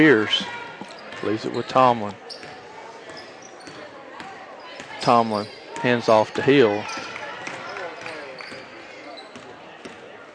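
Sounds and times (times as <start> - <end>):
speech: 0.0 - 0.6, 1.2 - 2.3, 5.0 - 7.0
steady crowd noise and talk: 0.0 - 10.3
basketball being dribbled on court during a women's basketball game: 2.3 - 5.9, 6.8 - 10.1.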